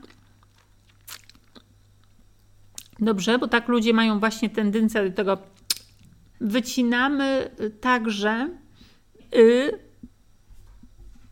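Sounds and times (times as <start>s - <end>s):
saliva clicks: 0.0s - 3.0s, 5.5s - 6.2s
low steady hum: 0.0s - 11.3s
wet mouth smacks: 0.9s - 1.7s, 5.6s - 6.1s
speech: 3.0s - 5.6s, 6.4s - 8.6s, 9.3s - 9.8s.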